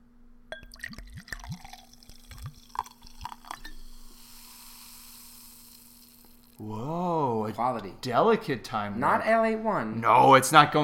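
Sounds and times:
fizzy grapefruit soda poured into a hand-held glass: 0.6s - 6.6s
speech: 6.6s - 10.8s.

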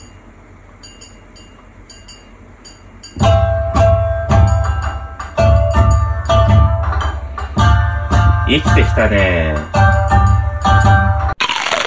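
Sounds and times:
beat of plucked shamisen sample hits: 3.2s - 11.4s
speech: 9.0s - 9.8s.

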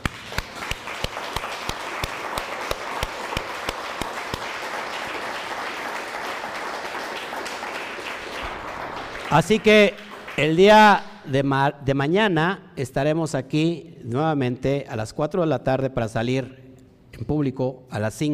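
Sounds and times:
large crowd applauding: 0.0s - 11.2s
speech: 9.3s - 16.6s, 17.2s - 18.3s.

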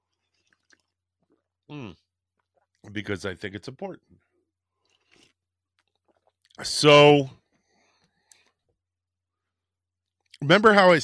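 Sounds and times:
person sipping coffee with wet clicks and slurp: 0.1s - 2.8s, 4.8s - 6.6s
speech: 1.7s - 2.0s, 2.8s - 4.3s, 6.6s - 7.4s, 10.4s - 11.0s.

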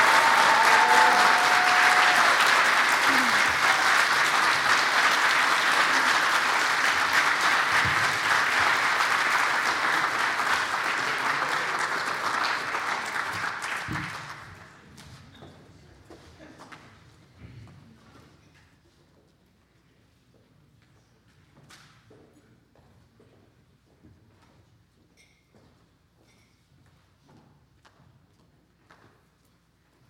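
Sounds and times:
audience applause for award recipients: 0.0s - 14.7s.

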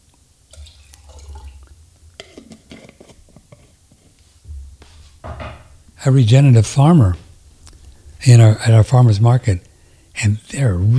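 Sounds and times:
water poured into a glass in uneven spurts: 0.5s - 1.7s
speech: 6.0s - 7.2s, 8.2s - 10.9s.

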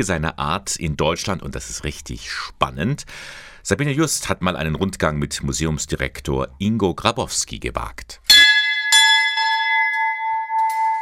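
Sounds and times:
speech: 0.0s - 8.4s
metal monastery entrance bell ringing: 8.3s - 11.0s.

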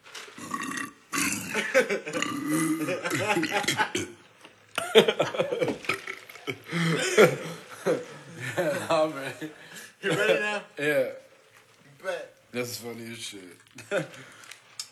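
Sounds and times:
loud long croaky rumbling burps: 0.4s - 4.3s, 5.8s - 6.6s
laughter: 1.5s - 4.2s, 4.8s - 10.7s, 13.8s - 14.3s
speech: 1.8s - 4.2s, 5.0s - 6.0s, 13.2s - 14.5s.

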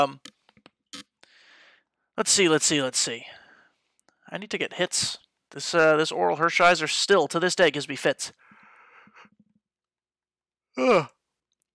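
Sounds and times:
speech: 0.0s - 0.3s, 2.2s - 3.4s, 4.3s - 8.4s, 10.8s - 11.2s
person yawning: 10.8s - 11.2s.

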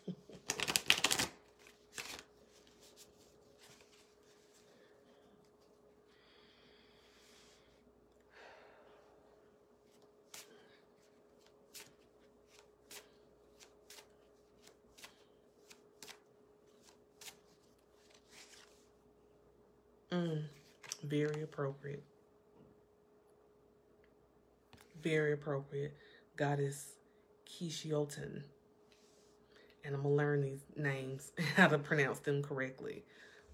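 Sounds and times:
deck of cards shuffling: 0.2s - 4.6s, 9.9s - 18.9s, 20.6s - 21.5s
speech: 21.1s - 22.2s, 25.0s - 28.6s, 29.8s - 33.3s.

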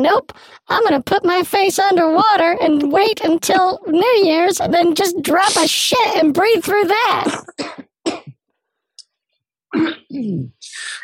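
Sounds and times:
speech: 0.0s - 8.2s, 9.7s - 11.0s
person coughing: 7.2s - 8.4s, 9.7s - 11.0s
throat clearing: 9.7s - 11.0s.

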